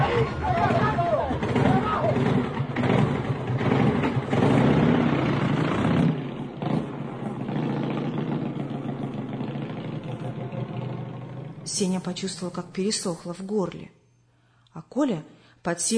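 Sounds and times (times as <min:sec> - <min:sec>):
rough, loud male voices shouting and talking: 0:00.0 - 0:03.3
motorcycle engine rumbling as it pulls away: 0:00.0 - 0:12.1
speech: 0:11.8 - 0:14.0, 0:14.8 - 0:15.9.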